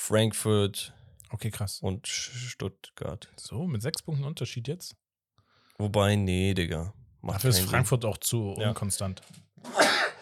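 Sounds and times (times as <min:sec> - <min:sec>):
speech: 0:00.1 - 0:05.0, 0:05.8 - 0:09.9
person sneezing: 0:09.7 - 0:10.1.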